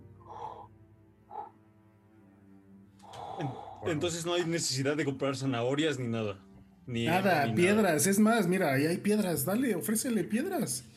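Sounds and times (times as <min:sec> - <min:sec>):
breathy exhalations with a slight voiced tonal edge: 0:00.2 - 0:01.6, 0:03.0 - 0:03.9
speech: 0:03.4 - 0:10.9.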